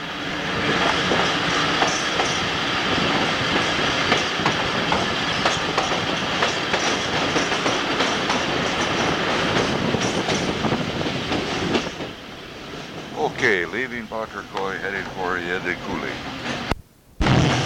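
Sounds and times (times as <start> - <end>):
moving train rumble: 0.0 - 17.6
train wheels clickety-clack over rail joints: 0.6 - 13.4
speech: 14.2 - 16.5.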